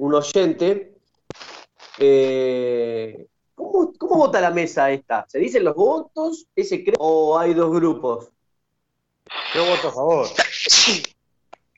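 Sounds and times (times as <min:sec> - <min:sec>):
speech: 0:00.0 - 0:08.4, 0:09.3 - 0:11.1
single loud sneeze with a sharp breathy burst: 0:09.3 - 0:11.2.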